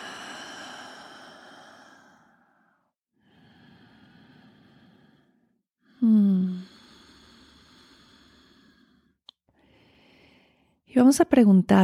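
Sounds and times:
person inhaling through nose and exhaling through mouth: 0.0s - 10.8s
speech: 11.0s - 11.8s.

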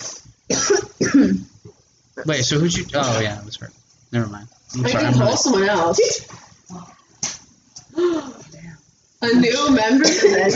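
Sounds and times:
person coughing after smoking a dab: 0.5s - 1.5s, 10.0s - 10.5s
speech: 2.2s - 7.0s, 9.2s - 10.5s
breathy sound: 7.9s - 8.8s.

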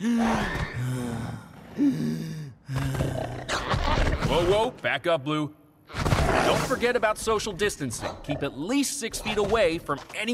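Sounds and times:
person imitating labored gasping breathing as a coronavirus symptom: 0.0s - 3.6s
speech: 1.8s - 2.3s, 4.3s - 5.6s, 6.3s - 10.3s.

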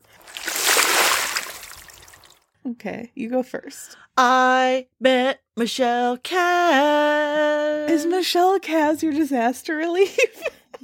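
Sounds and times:
water splash: 0.0s - 2.4s
speech: 2.6s - 10.8s.

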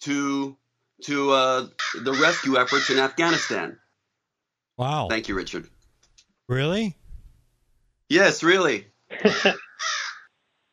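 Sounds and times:
speech: 0.0s - 3.8s, 4.8s - 5.7s, 6.5s - 7.0s, 8.1s - 10.0s
raven caw sound effect: 1.8s - 3.6s, 9.7s - 10.3s.

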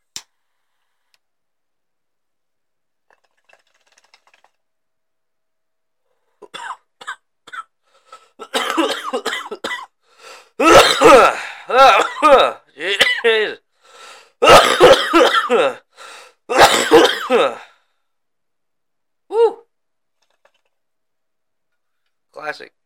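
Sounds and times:
heavy coughing fit after smoking: 6.4s - 10.0s, 10.6s - 13.5s, 14.4s - 15.9s, 16.5s - 17.7s.

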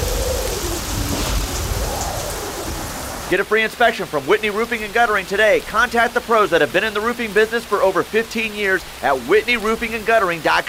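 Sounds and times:
low rumble of thunder: 0.0s - 3.3s
rain and hail pounding down on a roof: 0.0s - 10.6s
speech: 3.3s - 10.6s.

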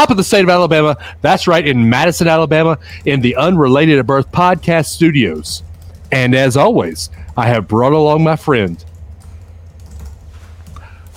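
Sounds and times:
speech: 0.0s - 8.9s
steady low hum: 0.0s - 11.1s
man typing on a computer keyboard: 4.4s - 6.4s, 8.5s - 11.1s.

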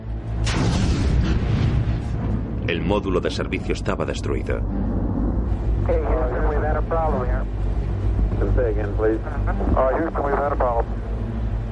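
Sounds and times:
deep rumble: 0.0s - 11.6s
tank explosion roar: 0.4s - 3.0s
speech: 2.7s - 5.0s, 6.8s - 7.6s, 8.4s - 11.0s.

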